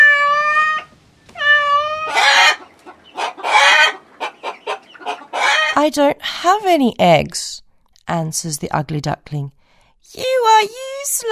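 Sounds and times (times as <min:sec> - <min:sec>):
cat meowing: 0:00.0 - 0:02.6
hen squawking and clucking: 0:00.0 - 0:05.8
speech: 0:05.8 - 0:07.4, 0:08.1 - 0:11.3.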